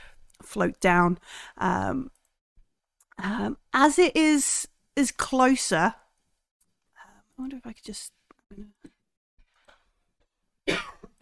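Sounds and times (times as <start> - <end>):
speech: 0.5 - 2.2, 3.2 - 6.0, 7.4 - 8.8
loud harsh cough: 10.7 - 11.1.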